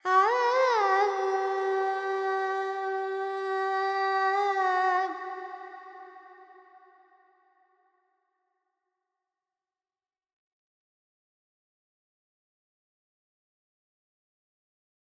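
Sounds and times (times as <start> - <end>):
Carnatic female alaps in Panthuvarali: 0.0 - 6.2.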